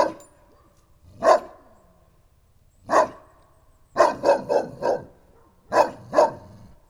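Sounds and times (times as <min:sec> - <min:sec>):
St. Bernard barking in a farmyard in Nagykőrös Hungary: 0:00.0 - 0:00.2, 0:01.2 - 0:01.6, 0:02.9 - 0:03.3, 0:04.0 - 0:06.6.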